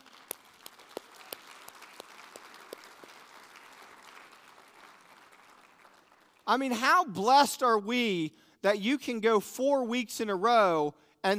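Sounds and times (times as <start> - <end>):
audience applauding a praise team: 0.0 - 6.5
speech: 6.5 - 11.3.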